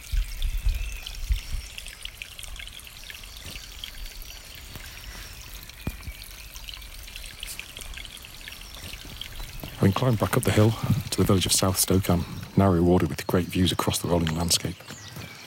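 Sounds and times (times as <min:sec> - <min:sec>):
babbling brook trickling and splashing: 0:00.0 - 0:15.4
speech: 0:09.8 - 0:15.0.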